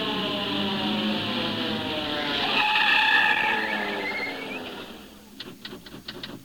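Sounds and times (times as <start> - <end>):
truck tires skidding: 0.2 - 6.4
sharp clicks: 5.3 - 6.4.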